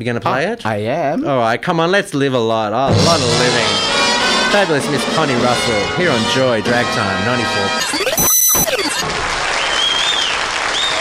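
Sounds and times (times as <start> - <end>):
speech: 0.0 - 8.2
audience clapping and cheering after a song: 8.9 - 11.0.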